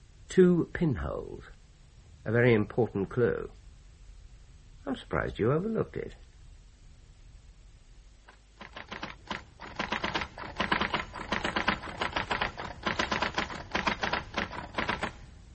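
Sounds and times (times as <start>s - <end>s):
speech: 0.3s - 1.6s, 2.2s - 3.6s, 4.8s - 6.3s
typewriter typing: 8.3s - 15.3s.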